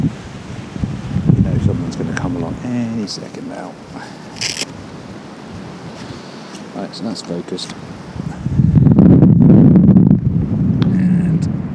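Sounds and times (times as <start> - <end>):
wind buffeting a microphone outdoors: 0.0 - 11.7
speech: 2.7 - 4.2, 6.8 - 8.0
faint rustle: 3.3 - 5.0, 5.6 - 8.6.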